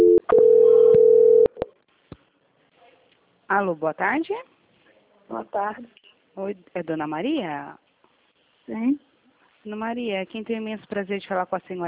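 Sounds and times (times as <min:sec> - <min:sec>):
telephone call-transfer tone: 0:00.0 - 0:01.6
speech: 0:03.5 - 0:04.5, 0:05.3 - 0:07.8, 0:08.7 - 0:11.8.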